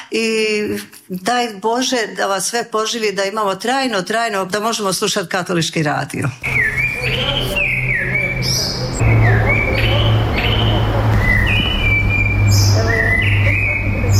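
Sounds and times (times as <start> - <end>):
speech: 0.1 - 7.4
birds singing in a monastery courtyard beside a busy street: 6.4 - 14.1.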